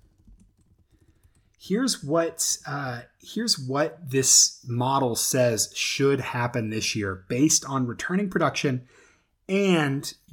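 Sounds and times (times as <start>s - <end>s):
computer keyboard clicking: 0.0s - 1.6s
speech: 1.6s - 10.3s.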